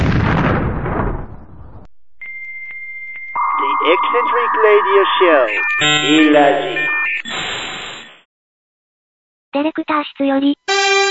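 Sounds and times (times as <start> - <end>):
loud explosion with a deep roaring rumble: 0.0 - 1.9
speech: 3.9 - 7.6, 9.5 - 11.0.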